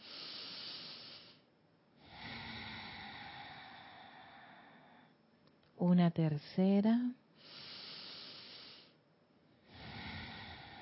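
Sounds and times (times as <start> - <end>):
deep breath in and out during a guided breathing exercise: 0.0 - 5.2, 7.3 - 10.7
speech: 5.8 - 7.6.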